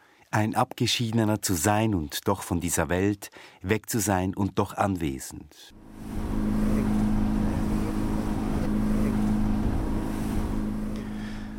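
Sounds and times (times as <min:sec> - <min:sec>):
speech: 0:00.3 - 0:06.5
inflatable motorboat engine roaring over waves: 0:05.8 - 0:11.5
rushing water: 0:05.8 - 0:11.5.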